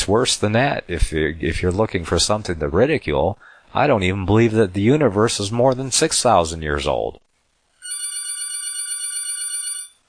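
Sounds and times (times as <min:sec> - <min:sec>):
speech: 0:00.1 - 0:07.2
telephone ringing with electronic trill: 0:07.8 - 0:10.0.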